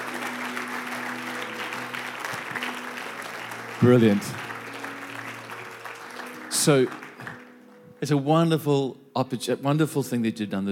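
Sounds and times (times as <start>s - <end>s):
large crowd applauding: 0.0s - 8.2s
speech: 3.8s - 4.4s, 6.6s - 7.0s, 8.0s - 10.7s.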